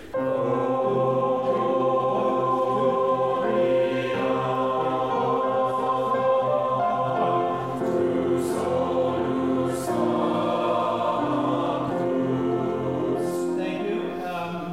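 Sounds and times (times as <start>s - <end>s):
choir singing rehearsal part: 0.1s - 14.7s.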